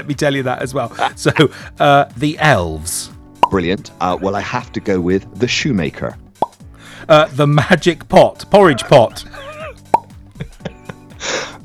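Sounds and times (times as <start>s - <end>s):
speech: 0.0s - 6.2s, 7.0s - 9.5s
laughter: 0.8s - 1.9s, 7.1s - 11.6s
faint tonal background: 0.8s - 11.6s
short breathy hiss: 1.0s - 2.1s, 6.4s - 11.6s
voice imitating tennis ball hits with sharp mouth pops: 3.3s - 3.7s, 6.2s - 8.2s, 9.1s - 10.6s.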